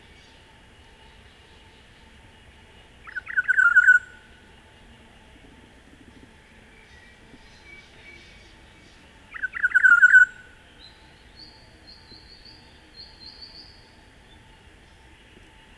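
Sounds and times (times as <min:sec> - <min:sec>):
Olive-backed oriole (Oriolus sagittatus) singing liquid gurgling phrases: 0:03.0 - 0:04.4, 0:06.7 - 0:14.5.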